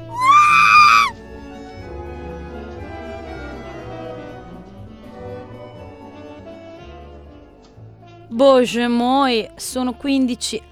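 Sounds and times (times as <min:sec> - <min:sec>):
woman screaming shrilly inside police headquarters in Turin: 0:00.0 - 0:01.1
speech: 0:08.3 - 0:10.7.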